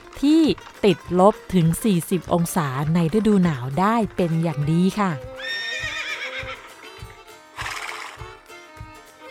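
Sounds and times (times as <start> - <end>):
hooves clip-clopping: 0.0 - 9.2
speech: 0.2 - 5.3
horse whinnying: 5.4 - 6.8, 7.6 - 8.2.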